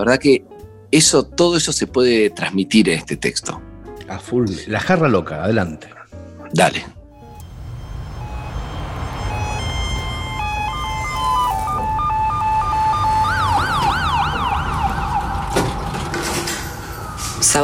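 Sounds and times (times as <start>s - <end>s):
speech: 0.0s - 7.0s
ambulance siren in two-tone and wailing patterns: 7.2s - 17.6s
rumbling traffic: 7.2s - 17.6s.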